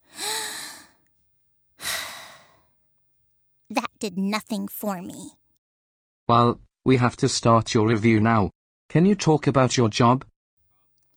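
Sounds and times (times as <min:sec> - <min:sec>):
deep breath from a stressed person: 0:00.0 - 0:01.0, 0:01.8 - 0:02.7
speech: 0:03.7 - 0:05.4, 0:06.3 - 0:10.3.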